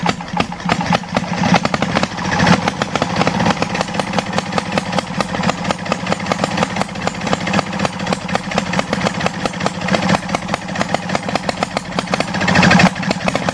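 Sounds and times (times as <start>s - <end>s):
petrol engine on Super 95 running after starting: 0.0s - 13.5s.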